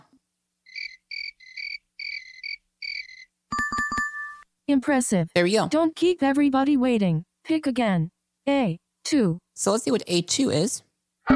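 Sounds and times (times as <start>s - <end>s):
cricket chirping: 0.6s - 3.3s
speech: 4.7s - 10.9s.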